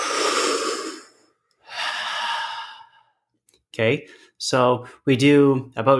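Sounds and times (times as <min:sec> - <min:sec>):
long relaxed exhale: 0:00.0 - 0:03.1
deep airy inhale through the mouth: 0:00.0 - 0:03.2
speech: 0:03.8 - 0:05.9.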